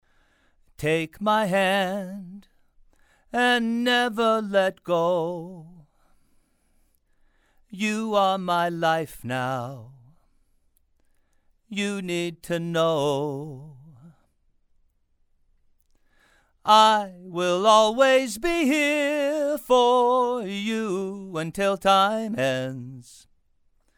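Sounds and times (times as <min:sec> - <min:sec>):
man singing: 0:00.8 - 0:02.6, 0:03.3 - 0:05.9, 0:07.7 - 0:10.2, 0:11.7 - 0:14.2, 0:16.6 - 0:23.3.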